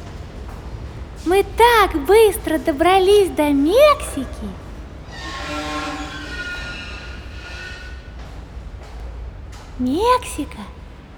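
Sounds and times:
train rolling along with a steady low rumble: 0.0 - 11.1
speech: 1.2 - 4.6, 9.8 - 10.8
sustained train horn tone: 5.0 - 8.3.

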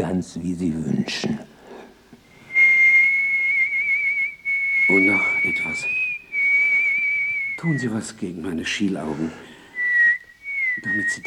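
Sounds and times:
speech: 0.0 - 1.5, 4.9 - 6.0, 7.6 - 9.5, 10.8 - 11.2
person whistling while walking along a street in Vienna: 2.3 - 8.2, 9.8 - 11.2.

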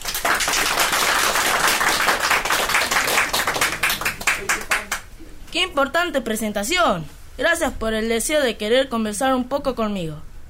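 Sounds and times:
applause welcoming a guest to an interview session: 0.0 - 5.1
speech: 5.6 - 10.3.

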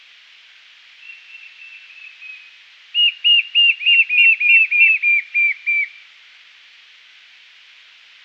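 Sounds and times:
White-shouldered fire-eye Pyriglena leucoptera whistled song: 1.0 - 6.0.

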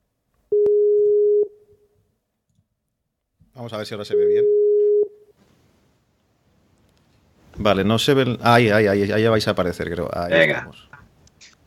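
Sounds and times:
telephone busy tone beep after hanging up and calling again: 0.5 - 1.5, 4.2 - 5.2
speech: 3.6 - 4.6, 7.6 - 11.0.

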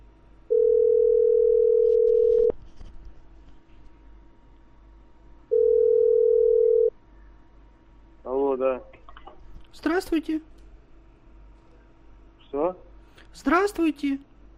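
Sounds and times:
telephone ringback tone while placing a call: 0.5 - 2.5, 5.5 - 6.9
speech: 10.0 - 10.6, 13.4 - 14.3.

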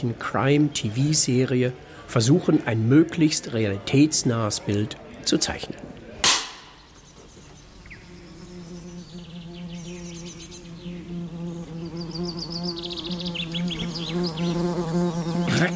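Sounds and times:
speech: 0.0 - 5.9
wasps buzzing in high season: 7.5 - 15.7.

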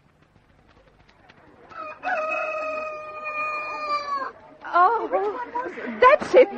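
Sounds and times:
rooster crowing: 1.7 - 4.3
speech: 5.2 - 6.5.

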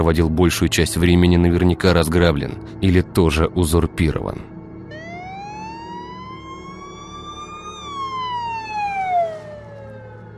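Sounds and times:
speech: 0.0 - 4.5
police car siren passing by: 4.9 - 10.3.

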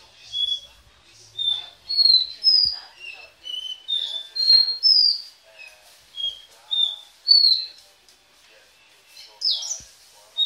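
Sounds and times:
Belgian canary whistled song: 0.2 - 0.8, 1.4 - 7.8, 9.1 - 9.8.

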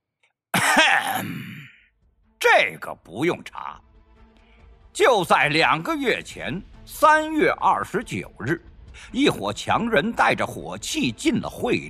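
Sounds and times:
man coughing angrily or clearing his throat: 0.6 - 1.8
speech: 1.2 - 1.6, 2.4 - 3.9, 5.0 - 11.8.

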